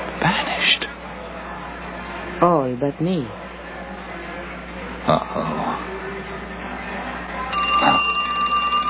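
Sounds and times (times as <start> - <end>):
speech: 0.2 - 0.9, 2.4 - 3.4, 5.1 - 6.4
payphone in a phone booth ringing: 7.5 - 8.8.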